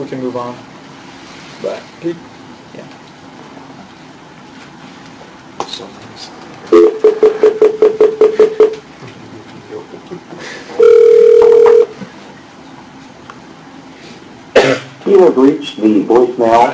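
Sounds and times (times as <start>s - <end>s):
speech: 0.0s - 0.7s, 1.6s - 3.0s, 5.8s - 7.3s, 15.1s - 16.7s
short evenly spaced telephone beeps during a call: 6.7s - 8.8s, 10.8s - 11.9s.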